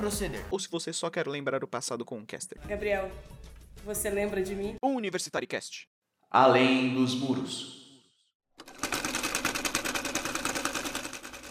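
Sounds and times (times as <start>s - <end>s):
speech: 0.0s - 7.8s
sewing machine running during a sewing lesson: 8.6s - 11.4s.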